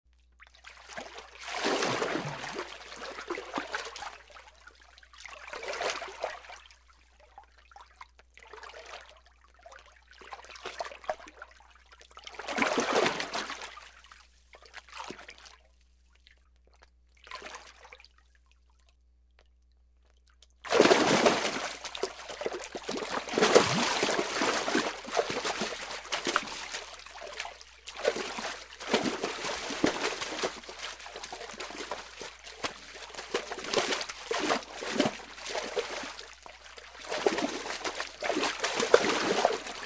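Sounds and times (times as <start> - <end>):
person splashing in water: 0.7 - 4.2, 12.4 - 13.8, 20.6 - 39.8.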